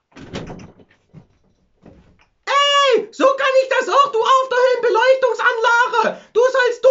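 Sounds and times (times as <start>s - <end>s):
door being opened: 0.0s - 2.4s
thuds and rustling: 0.0s - 2.4s
speech: 3.2s - 6.9s.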